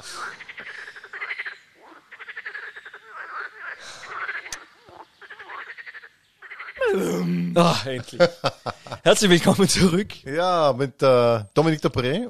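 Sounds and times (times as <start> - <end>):
dense chorus of frogs croaking: 0.0 - 6.9
speech: 7.0 - 12.2
laughter: 7.6 - 10.0.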